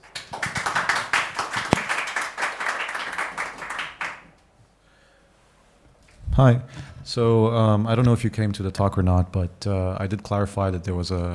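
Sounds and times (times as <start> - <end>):
audience at a talk applauding: 0.0 - 4.3
speech: 6.4 - 11.3.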